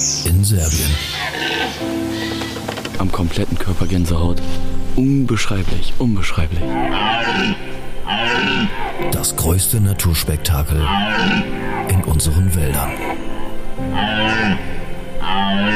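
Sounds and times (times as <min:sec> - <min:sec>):
speech: 0:00.4 - 0:13.3, 0:14.0 - 0:15.7
red deer stag roaring during the rut in the Danube floodplains of Serbia: 0:01.0 - 0:02.6, 0:06.6 - 0:09.1, 0:10.8 - 0:12.0, 0:12.8 - 0:15.7.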